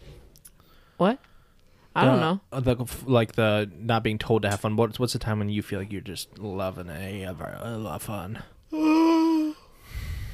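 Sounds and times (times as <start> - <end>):
speech: 1.0 - 1.3, 2.0 - 8.9
loud drawn-out yawn: 8.7 - 9.7.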